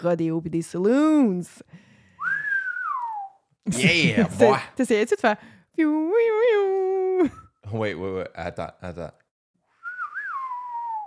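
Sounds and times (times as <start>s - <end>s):
speech: 0.0s - 1.9s, 3.6s - 9.2s
person whistling a western tune: 2.2s - 3.4s, 9.8s - 11.0s
laughter: 3.7s - 4.7s.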